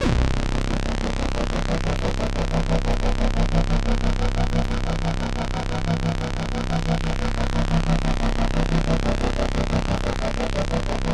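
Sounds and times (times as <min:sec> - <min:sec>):
vinyl synth note at C0: 0:00.0 - 0:11.0.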